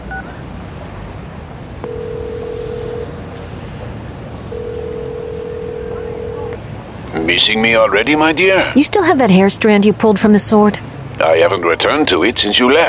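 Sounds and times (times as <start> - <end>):
steady road and traffic noise: 0.0 - 12.8
cell phone dialing tones: 1.8 - 3.4, 4.4 - 6.7
speech: 7.2 - 12.8.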